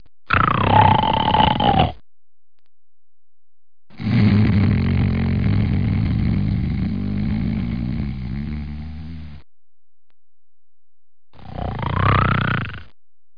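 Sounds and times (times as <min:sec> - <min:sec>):
person snoring: 0:00.3 - 0:02.0, 0:03.9 - 0:09.4, 0:11.4 - 0:12.9.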